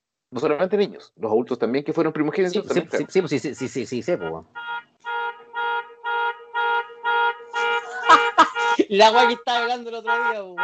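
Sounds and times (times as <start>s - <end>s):
speech: 0.3s - 4.9s, 8.9s - 10.6s
misconfigured alarm blaring outside in short bursts: 2.9s - 10.6s
laughter: 7.6s - 9.0s.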